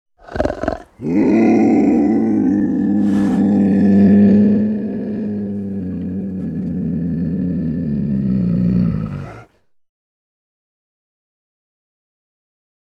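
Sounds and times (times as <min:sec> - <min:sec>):
snow leopard giving an aggressive deep rough growling roar: 0:00.2 - 0:09.6.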